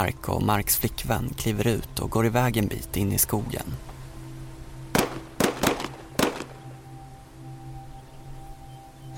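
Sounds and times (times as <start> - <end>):
speech: 0.0 - 3.9
low steady hum: 0.0 - 9.1
sharp gunshots in a forest: 5.0 - 6.6.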